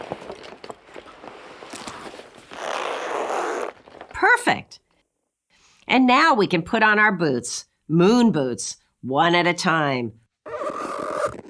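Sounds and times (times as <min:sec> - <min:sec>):
fabric rustling: 0:00.0 - 0:04.1
zipper pull on a white spacesuit being zipped up: 0:01.7 - 0:04.1, 0:10.5 - 0:11.4
speech: 0:04.4 - 0:04.8, 0:05.9 - 0:10.2.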